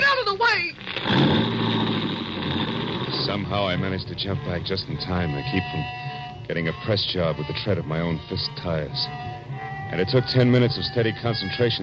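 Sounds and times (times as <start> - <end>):
stolen coupe's engine revving as the car pulls away: 0.9 - 4.2
speech: 3.4 - 11.8.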